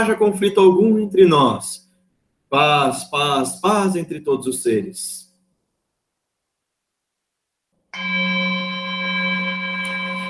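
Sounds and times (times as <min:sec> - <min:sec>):
speech: 0:00.0 - 0:01.8, 0:02.5 - 0:05.2, 0:08.0 - 0:08.3
single deep bell struck and ringing: 0:08.0 - 0:10.2.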